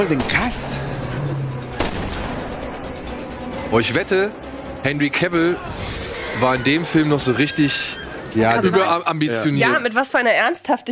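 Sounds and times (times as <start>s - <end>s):
gunshot in a film scene: 0.0s - 0.8s, 1.7s - 2.6s
speech: 0.0s - 1.2s, 3.7s - 10.8s
noisy rumbling film soundtrack: 0.0s - 10.8s.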